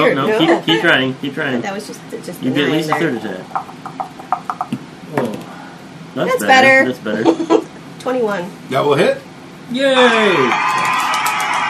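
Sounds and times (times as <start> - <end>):
speech: 0.0 - 4.4, 6.2 - 10.9
many voices shouting and cheering together: 10.0 - 11.6
person whooping: 10.0 - 11.6.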